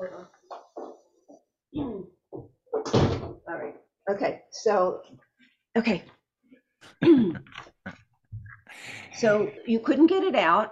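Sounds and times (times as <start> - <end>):
door swinging shut with a firm thud: 2.8 - 3.4
speech: 4.2 - 5.2, 5.8 - 6.2, 9.2 - 10.6.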